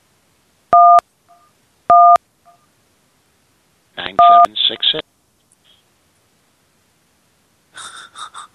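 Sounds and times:
telephone keypad two-note beeps dialing into an automated phone menu: 0.8 - 2.6, 4.2 - 4.5.

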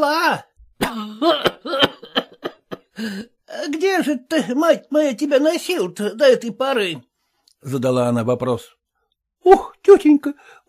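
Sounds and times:
speech: 0.0 - 1.5, 3.0 - 8.8, 9.4 - 10.6
old washerwoman coughing as she wakes: 0.8 - 2.8.

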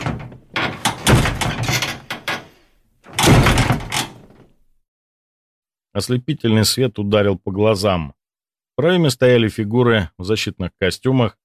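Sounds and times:
heavy iron bunker door crashing open: 0.0 - 4.4
speech: 6.0 - 8.2, 8.8 - 11.4.

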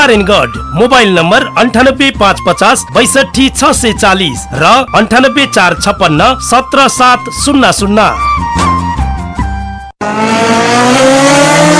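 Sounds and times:
speech: 0.0 - 8.7
new motorcycle engine revving in an advert: 10.0 - 11.7.

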